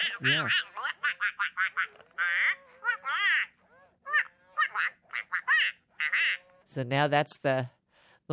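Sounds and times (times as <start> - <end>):
toy duck quacking in short nasal bursts: 0.0 - 6.7
speech: 0.2 - 1.5, 6.8 - 8.3.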